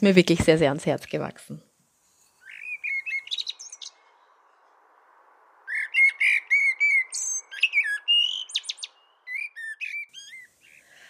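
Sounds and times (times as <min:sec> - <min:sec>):
speech: 0:00.0 - 0:01.7
common blackbird singing fluting warbled phrases: 0:02.4 - 0:04.2, 0:05.6 - 0:11.0.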